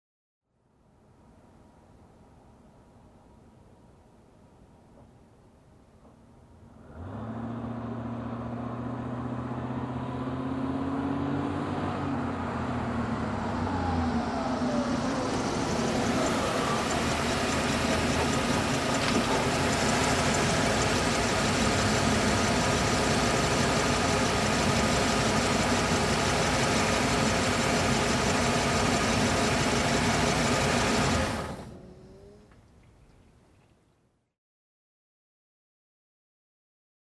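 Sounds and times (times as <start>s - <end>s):
truck approaching and parking: 6.6s - 32.8s.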